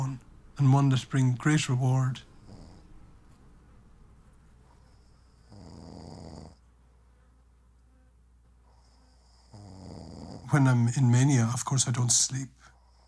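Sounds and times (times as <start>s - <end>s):
speech: 0.2s - 2.3s, 10.5s - 12.7s
person snoring: 2.4s - 2.9s, 5.3s - 6.6s, 8.8s - 10.7s.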